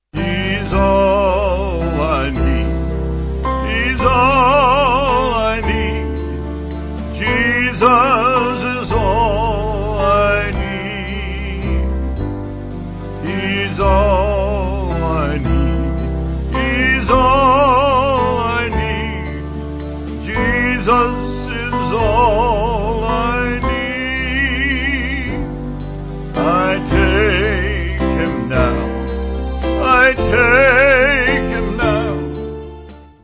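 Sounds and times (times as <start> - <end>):
band with vocals: 0.2 - 32.8.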